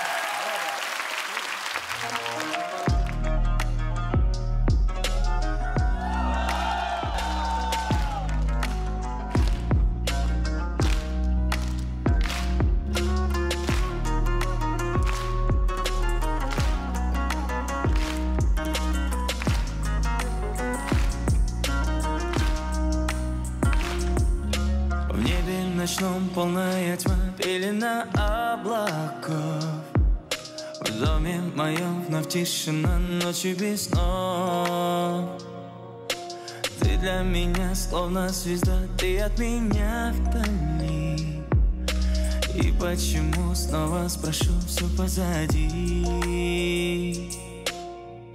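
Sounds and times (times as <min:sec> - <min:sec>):
crowd applause: 0:00.0 - 0:02.9, 0:06.0 - 0:09.7, 0:17.9 - 0:18.4
live pop song intro performed on stage by a singer from Kazakhstan: 0:01.8 - 0:48.3
speech: 0:32.4 - 0:34.9, 0:37.0 - 0:40.7, 0:42.8 - 0:47.0.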